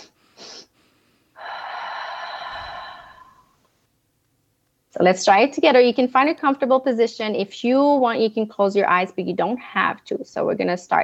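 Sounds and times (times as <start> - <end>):
sniffing inhale in a guided breathing exercise: 0.0 - 3.6
drawn-out breath with a faint whistling wheezy tone: 0.0 - 3.7
speech: 5.0 - 11.0.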